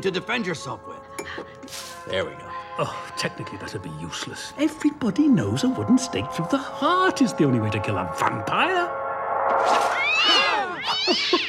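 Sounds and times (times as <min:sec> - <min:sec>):
speech: 0:00.0 - 0:10.4, 0:11.1 - 0:11.4
cat meowing: 0:09.9 - 0:11.4.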